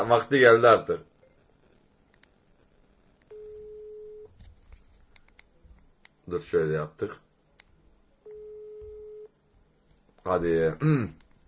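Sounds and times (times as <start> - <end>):
speech: 0.0 - 1.1, 6.3 - 7.2, 10.3 - 11.2
faint hiss: 0.0 - 11.4
phone call ringing out: 3.3 - 4.3, 8.3 - 9.3.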